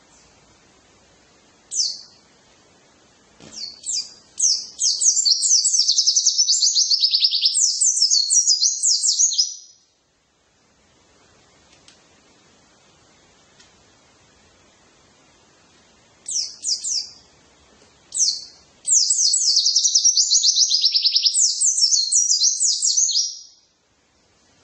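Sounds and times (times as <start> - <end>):
white-eye twittering song with rapid chatter: 1.7 - 2.2, 3.5 - 9.9, 16.2 - 17.2, 18.1 - 23.8.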